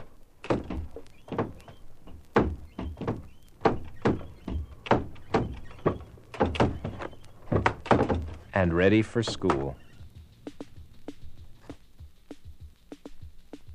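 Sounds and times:
doors banging open and shut: 0.0 - 8.6, 9.2 - 10.0
speech: 8.6 - 9.9.

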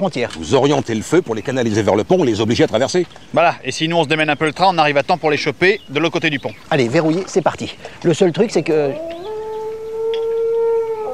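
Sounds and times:
speech: 0.0 - 9.2
wolf howling: 8.6 - 11.1.

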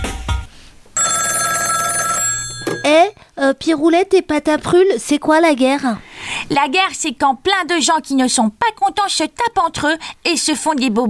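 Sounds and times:
telephone bell ringing: 1.0 - 3.3
speech: 3.4 - 11.0.

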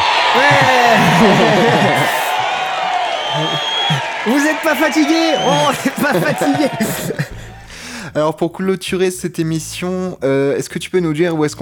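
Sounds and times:
laughter: 0.0 - 8.2
crowd cheering, whooping and shouting: 0.0 - 8.4
speech: 0.4 - 2.2, 3.3 - 7.2, 8.2 - 11.6.

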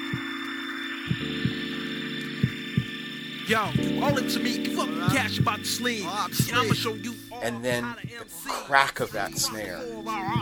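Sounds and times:
low soft heartbeat thumping: 0.0 - 0.3, 1.1 - 1.7, 2.4 - 3.0, 3.7 - 4.3, 5.0 - 5.7, 6.4 - 7.0, 7.7 - 8.3, 9.3 - 9.6, 10.2 - 10.4
speech: 3.5 - 10.4.

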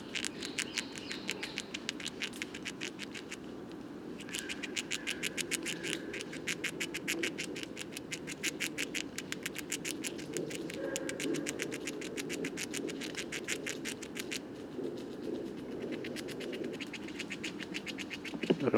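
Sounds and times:
wild Eurasian red squirrel gnawing conifer seeds in a Paris woodland: 0.0 - 18.7.

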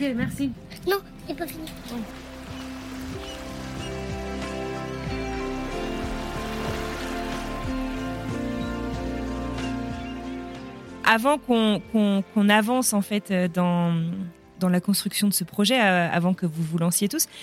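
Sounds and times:
speech: 0.0 - 2.3, 11.1 - 17.4
low tonal hum: 0.0 - 12.6
rain falling on a boat: 0.9 - 9.8.

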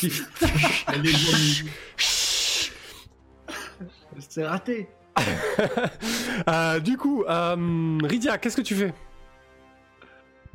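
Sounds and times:
laughter: 0.0 - 1.8, 5.2 - 6.8
speech: 0.0 - 2.2, 3.8 - 9.1
voice imitating a snake hissing: 1.0 - 3.1.

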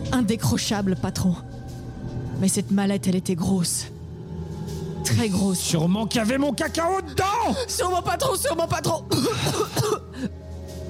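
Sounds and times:
speech: 0.1 - 1.5, 2.4 - 4.0, 5.0 - 10.4
harsh throaty coughs: 9.0 - 10.4.

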